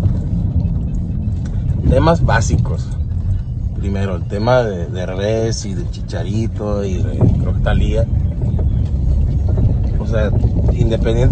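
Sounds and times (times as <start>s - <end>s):
engine and road noise inside a moving car: 0.0s - 11.2s
speech: 2.0s - 3.0s, 3.8s - 8.2s, 10.1s - 11.2s.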